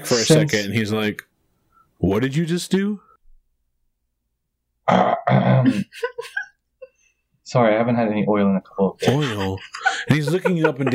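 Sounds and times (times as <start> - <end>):
laughter: 0.0 - 0.6, 5.4 - 6.4, 9.0 - 10.9
speech: 0.0 - 1.3, 2.0 - 3.1, 4.9 - 6.4, 7.5 - 10.9
voice imitating a robot clearing its metal throat: 4.9 - 5.8.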